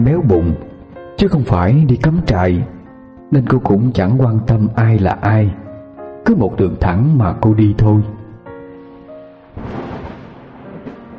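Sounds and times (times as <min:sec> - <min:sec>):
speech: 0:00.0 - 0:05.6, 0:06.2 - 0:08.2
thunder rumbling: 0:09.3 - 0:11.1
rain hissing: 0:09.5 - 0:11.1.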